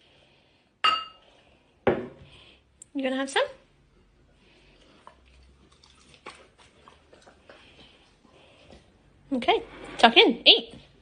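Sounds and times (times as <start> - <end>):
glasses clinking in a toast: 0.8 - 1.2
speech: 3.0 - 3.6, 9.4 - 10.8.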